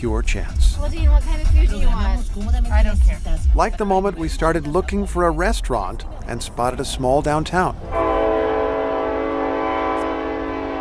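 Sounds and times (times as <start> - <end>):
speech: 0.0 - 8.0
deep rumble of a passing train: 0.0 - 10.7
train horn blaring in a long blast: 7.8 - 10.7.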